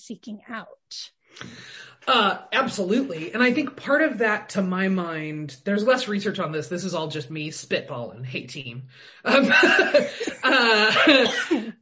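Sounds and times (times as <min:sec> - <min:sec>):
speech: 0:00.1 - 0:11.8
laughter: 0:02.1 - 0:03.8, 0:09.3 - 0:11.7
person coughing: 0:09.5 - 0:11.8.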